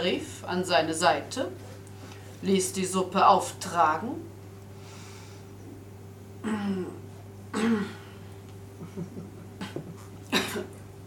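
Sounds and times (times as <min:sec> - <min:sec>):
speech: 0:00.0 - 0:01.7, 0:02.4 - 0:04.3
person clearing throat: 0:06.4 - 0:08.1, 0:09.6 - 0:10.8
person coughing: 0:06.4 - 0:08.1, 0:09.6 - 0:10.8.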